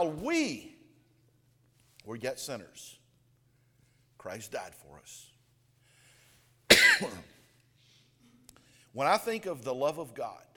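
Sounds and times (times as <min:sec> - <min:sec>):
speech: 0:00.0 - 0:00.7, 0:02.0 - 0:03.0, 0:04.2 - 0:05.3, 0:07.0 - 0:07.3, 0:09.0 - 0:10.5
harsh cough from a tickle in the throat: 0:06.7 - 0:07.4.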